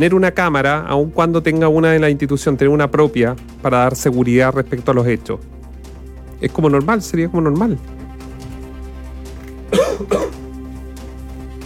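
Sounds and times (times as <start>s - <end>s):
speech: 0.0s - 5.6s, 6.4s - 8.0s, 9.7s - 10.4s
person coughing: 9.7s - 10.5s.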